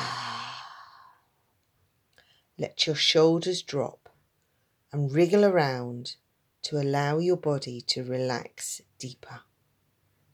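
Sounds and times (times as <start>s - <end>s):
deep breathy ha exhale: 0.0s - 1.2s
speech: 2.6s - 4.0s, 4.9s - 9.5s.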